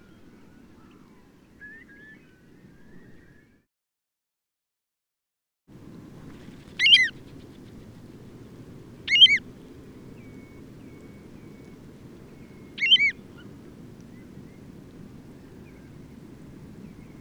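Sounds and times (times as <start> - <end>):
low rushing background: 5.8 - 17.2
bird calls given while taking off and flying away: 6.7 - 13.6.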